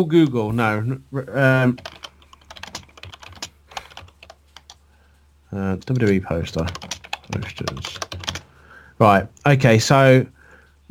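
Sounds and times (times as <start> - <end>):
speech: 0.0 - 2.0, 5.5 - 8.2, 9.0 - 10.9
typing on a computer keyboard: 1.8 - 4.8, 5.8 - 8.4.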